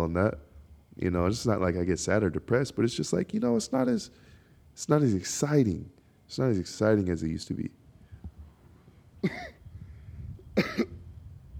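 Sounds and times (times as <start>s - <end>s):
speech: 0.0s - 7.8s, 9.2s - 9.6s
person coughing: 9.2s - 9.6s, 10.6s - 11.0s.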